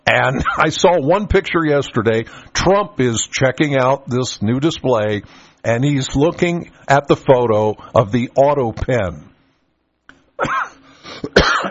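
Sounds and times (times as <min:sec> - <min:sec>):
speech: 0:00.1 - 0:09.3
harsh throaty coughing: 0:10.4 - 0:11.7.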